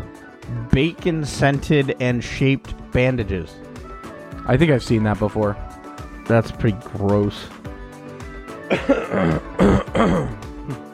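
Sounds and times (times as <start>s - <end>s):
speech: 0.8s - 3.6s, 4.5s - 5.7s, 6.3s - 7.6s, 8.7s - 10.8s
man clearing throat with something stuck in it: 8.6s - 10.9s.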